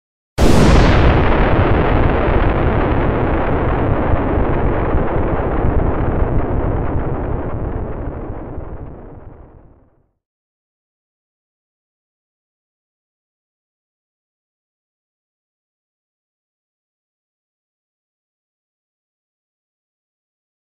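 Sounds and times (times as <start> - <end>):
explosion: 0.4 - 10.0.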